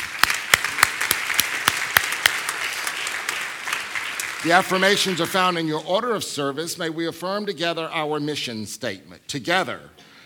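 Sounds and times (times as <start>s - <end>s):
audience applauding at a spiritual community service: 0.0s - 5.7s
speech: 4.4s - 10.1s.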